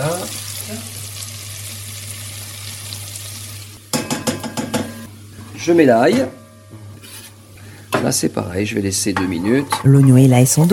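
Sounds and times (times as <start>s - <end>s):
butter sizzling in a pan: 0.0s - 4.7s
speech: 5.6s - 6.4s, 8.0s - 10.7s.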